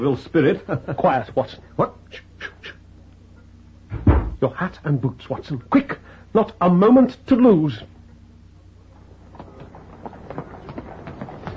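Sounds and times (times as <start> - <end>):
speech: 0.0 - 2.3, 4.4 - 7.9
low rumbling street background: 0.0 - 11.5
hooves of a horse pulling a hansom cab clip-clopping: 8.9 - 11.5.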